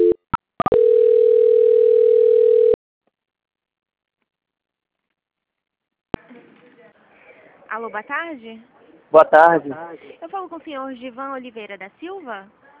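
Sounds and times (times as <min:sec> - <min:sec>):
steady mid-pitched telephone line tone as a call is transferred: 0:00.0 - 0:02.8
speech: 0:07.8 - 0:12.6.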